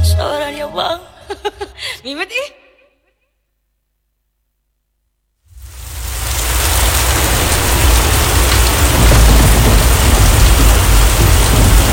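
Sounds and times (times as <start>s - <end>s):
speech: 2.0s - 2.6s
heavy rain pouring: 5.5s - 11.9s
deep continuous rumble of thunder: 5.6s - 11.9s.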